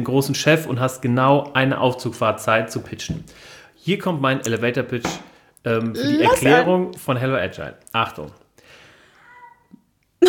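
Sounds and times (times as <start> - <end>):
speech: 0.0 - 8.4
cat meowing: 6.0 - 6.7, 9.2 - 9.7.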